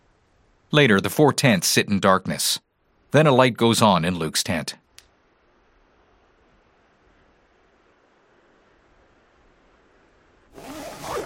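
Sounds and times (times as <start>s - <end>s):
speech: 0.7s - 4.8s
backpack zipper being unzipped inside a tent: 10.5s - 11.2s.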